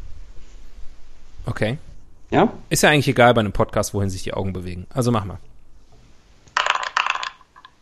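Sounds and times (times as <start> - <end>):
speech: 1.5 - 5.5
dice roll sound effect from an app: 6.4 - 7.7.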